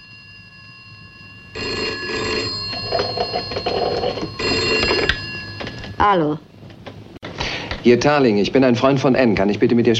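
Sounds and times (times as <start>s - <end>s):
telephone bell ringing as a call is placed to a home line: 0.0s - 6.4s
speech: 3.3s - 4.0s, 6.0s - 6.5s, 7.8s - 9.9s.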